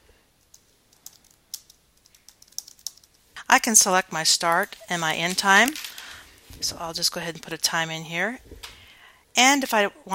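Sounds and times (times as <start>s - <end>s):
quiet computer keyboard typing: 0.4s - 3.2s
speech: 3.5s - 5.9s, 6.6s - 8.8s, 9.4s - 10.1s.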